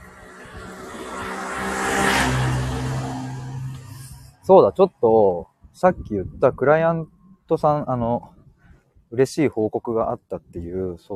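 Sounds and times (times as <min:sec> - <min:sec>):
motorcycle engine passing outside: 0:00.0 - 0:04.5
speech: 0:04.5 - 0:08.4, 0:09.1 - 0:11.1.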